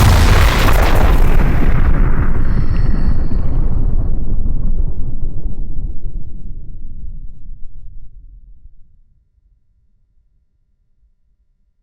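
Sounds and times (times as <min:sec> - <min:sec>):
nuclear explosion: 0:00.0 - 0:08.3.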